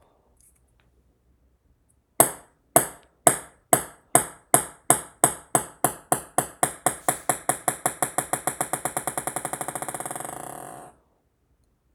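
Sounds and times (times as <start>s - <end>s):
ping pong: 2.2s - 10.9s.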